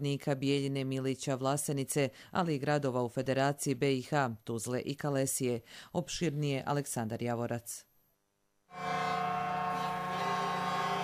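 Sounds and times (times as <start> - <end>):
speech: 0.0 - 7.9, 8.7 - 9.3
truck sirens in a protest drive by hauliers: 8.8 - 11.0.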